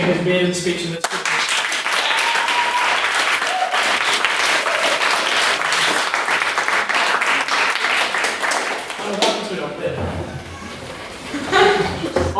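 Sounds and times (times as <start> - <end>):
speech: 0.0 - 1.4
crowd applause: 1.0 - 9.3
laughter: 11.1 - 12.3.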